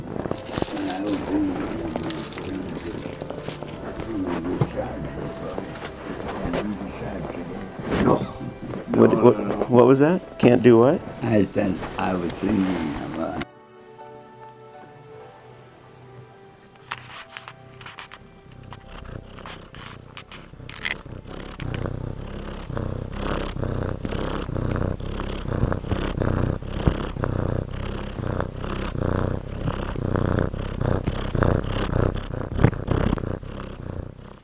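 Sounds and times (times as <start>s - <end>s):
faint rustles and clicks: 0.0s - 9.9s, 16.8s - 33.8s
cat purring: 0.0s - 13.4s, 16.7s - 34.4s
speech: 9.0s - 13.4s.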